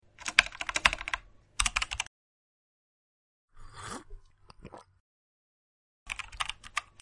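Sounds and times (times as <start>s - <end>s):
keyboard typing: 0.2s - 2.1s, 6.1s - 7.0s.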